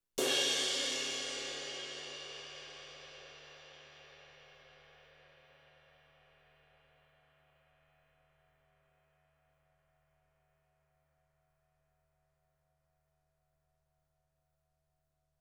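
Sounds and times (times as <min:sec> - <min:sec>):
20-inch crash ride cymbal crash: 0:00.2 - 0:03.3.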